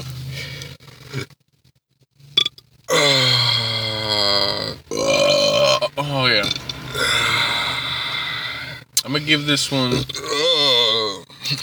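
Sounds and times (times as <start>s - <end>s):
person burping: 2.4s - 8.4s, 10.1s - 11.6s
speech: 9.3s - 10.3s.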